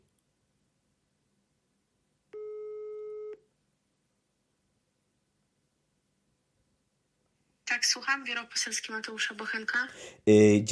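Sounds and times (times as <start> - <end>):
faint noise: 0.0 - 10.6
telephone ringing tone of a call to a member of parliament's office: 2.4 - 3.4
speech: 7.7 - 10.6.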